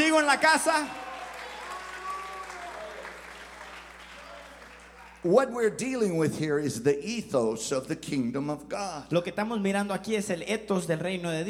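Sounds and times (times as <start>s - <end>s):
congregation clapping their hands: 0.0s - 5.5s
speech: 0.2s - 1.0s, 5.2s - 11.4s.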